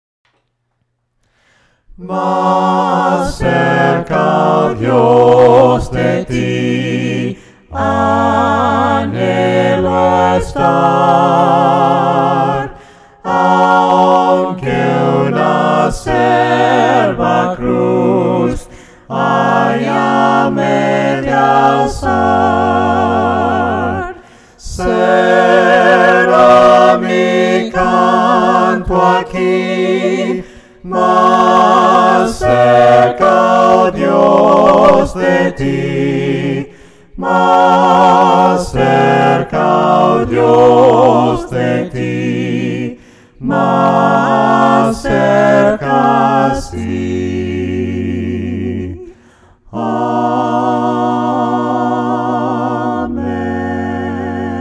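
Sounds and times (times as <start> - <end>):
voices singing a hymn a cappella: 1.4 - 54.6.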